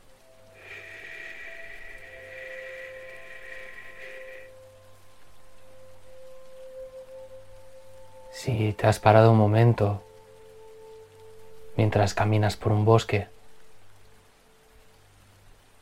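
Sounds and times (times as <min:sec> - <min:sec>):
water flowing in a stream: 0:00.0 - 0:15.7
thin high whistling tone: 0:00.6 - 0:04.5
speech: 0:08.4 - 0:10.0, 0:11.8 - 0:13.3.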